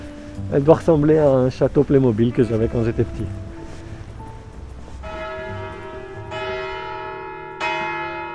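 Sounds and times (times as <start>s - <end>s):
speech: 0.5s - 3.4s
church bell tolling in a bell tower: 1.8s - 8.3s.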